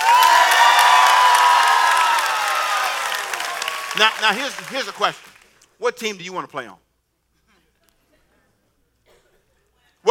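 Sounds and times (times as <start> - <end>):
large crowd cheering and shrieking: 0.0 - 4.1
scattered applause from a large crowd: 0.0 - 5.6
speech: 4.0 - 6.8.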